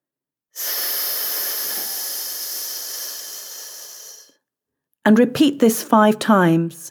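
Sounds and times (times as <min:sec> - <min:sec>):
long hissing exhale through the teeth: 0:00.6 - 0:04.4
speech: 0:05.0 - 0:06.8.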